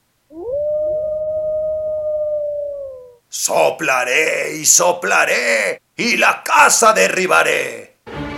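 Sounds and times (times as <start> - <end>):
low rumble of noise: 0.0 - 3.3
wolf howling: 0.3 - 3.2
speech: 3.4 - 7.9.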